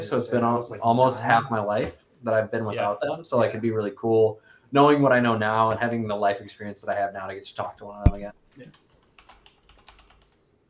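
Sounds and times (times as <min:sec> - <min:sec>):
speech: 0:00.0 - 0:08.8
typing on a computer keyboard: 0:08.7 - 0:10.4.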